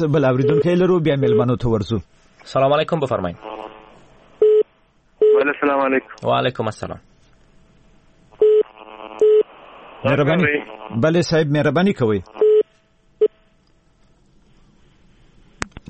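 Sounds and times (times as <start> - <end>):
speech: 0.0 - 3.5, 5.4 - 7.1, 10.0 - 12.4
distorted phone-line talking: 0.3 - 1.6, 5.2 - 6.2, 8.4 - 11.0
phone line tone of short electronic beeps after a call drops: 0.4 - 1.5.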